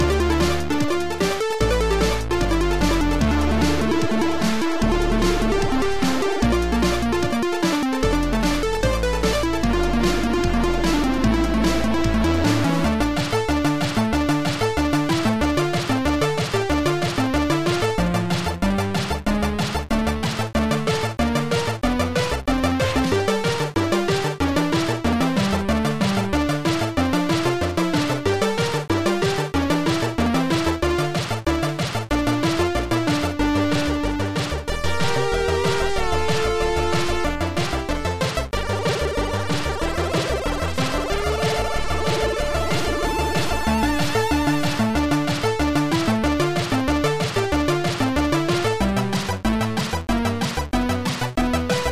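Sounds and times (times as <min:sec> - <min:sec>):
C64 cavern music: 0:00.0 - 0:51.8.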